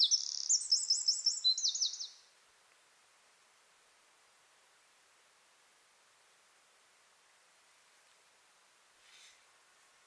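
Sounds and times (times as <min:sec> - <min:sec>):
Eurasian wren song, Troglodytes troglodytes: 0:00.0 - 0:02.3.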